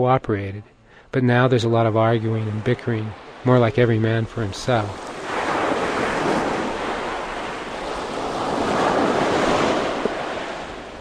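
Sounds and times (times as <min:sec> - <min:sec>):
speech: 0:00.0 - 0:05.1
surf washing onto a beach on the channel to Tiburon Island: 0:01.8 - 0:10.9
constant windy rush: 0:04.9 - 0:10.9.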